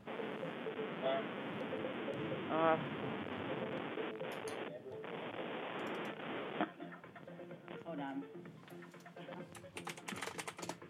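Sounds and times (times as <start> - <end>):
people talking: 0.1 - 5.2, 7.7 - 8.3, 9.2 - 9.6
fingers typing a password on a computer keyboard: 5.8 - 6.2, 9.4 - 10.8.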